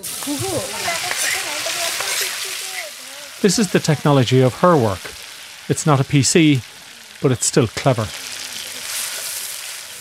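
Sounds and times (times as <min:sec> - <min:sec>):
vegetables sizzling in a hot wok-type pan over a ground fire: 0:00.0 - 0:10.0
speech: 0:00.2 - 0:01.0, 0:03.4 - 0:08.2.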